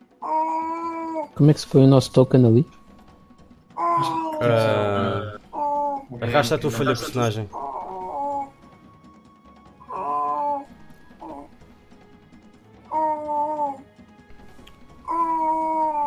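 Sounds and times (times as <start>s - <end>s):
baby babbling: 0.2s - 1.3s, 3.8s - 6.1s, 7.6s - 8.5s, 9.9s - 11.5s, 12.9s - 13.8s, 15.0s - 16.0s
speech: 1.4s - 2.8s, 4.0s - 5.3s, 6.1s - 7.6s.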